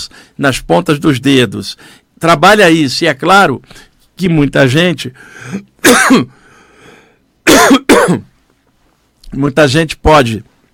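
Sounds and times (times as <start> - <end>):
speech: 0.0 - 6.4, 7.6 - 8.3, 9.3 - 10.5
loud harsh coughs: 5.5 - 6.4, 7.4 - 8.3.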